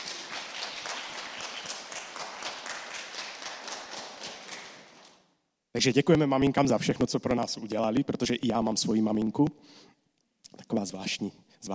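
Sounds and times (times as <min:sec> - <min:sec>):
crowd applauding: 0:00.0 - 0:05.2
speech: 0:05.8 - 0:11.7.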